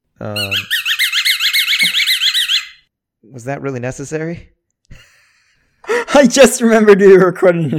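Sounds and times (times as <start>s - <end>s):
speech: 0.2s - 0.8s, 3.4s - 4.6s, 6.2s - 7.7s
squeaky toy ball squeezed by a dog: 0.3s - 2.9s.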